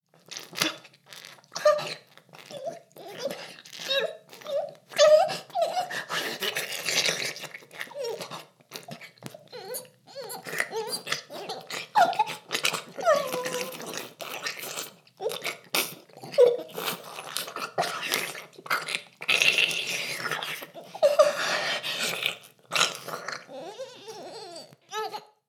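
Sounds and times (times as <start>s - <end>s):
oral sex ASMR sounds: 0.2s - 25.4s.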